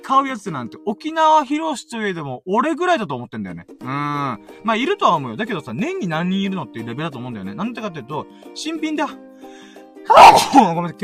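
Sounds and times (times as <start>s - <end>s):
speech: 0.1s - 11.0s
man sneezing: 10.1s - 10.7s.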